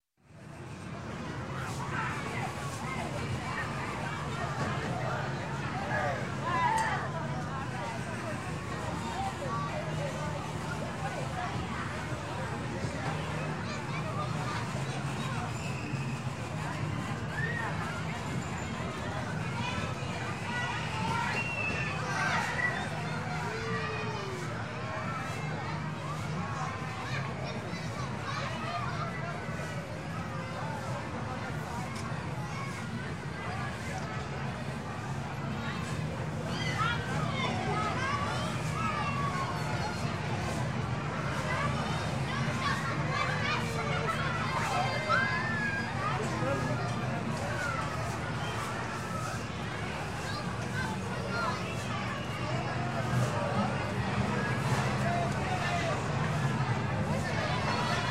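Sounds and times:
amusement park midway crowd: 0.0s - 58.0s.

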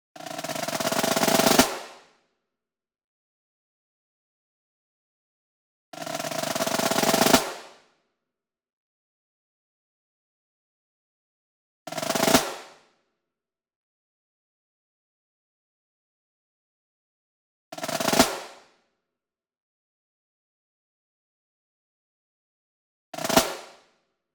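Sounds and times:
single Pearl marching snare drum roll: 0.2s - 2.0s, 6.0s - 7.8s, 11.9s - 12.7s, 17.8s - 18.6s, 23.2s - 23.8s.

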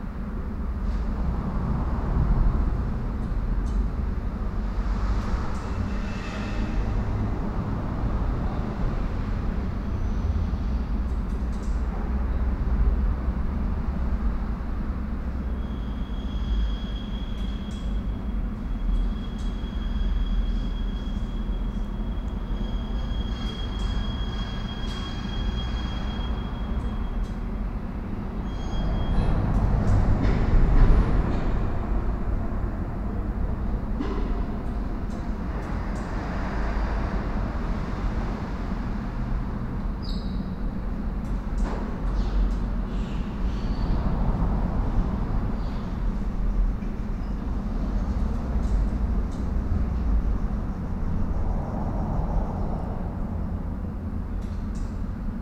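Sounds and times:
urban night echoes: 0.0s - 55.3s.

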